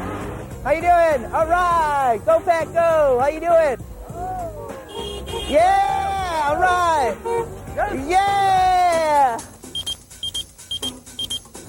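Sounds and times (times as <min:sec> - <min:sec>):
speech: 0:00.6 - 0:03.9, 0:05.5 - 0:09.5
pager beeping in high-pitched double chirps: 0:09.6 - 0:11.5.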